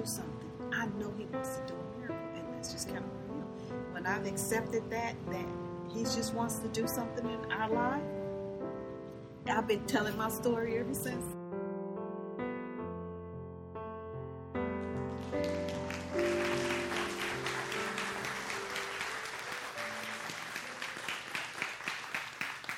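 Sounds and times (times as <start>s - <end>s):
speech: 0.0s - 8.2s, 9.4s - 11.4s
keyboard chords: 0.0s - 21.3s
audience applause: 14.9s - 22.7s.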